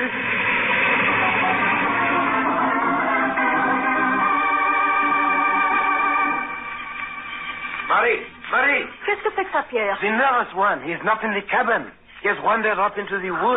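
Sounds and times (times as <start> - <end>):
approaching train roaring: 0.0 - 8.4
train horn droning: 0.9 - 7.5
speech: 9.7 - 13.5.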